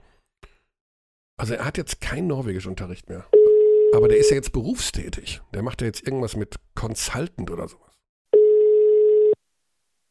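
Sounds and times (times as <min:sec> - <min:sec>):
speech: 0:01.4 - 0:08.0
telephone ringback tone while someone is being called: 0:03.4 - 0:04.4, 0:08.4 - 0:09.4.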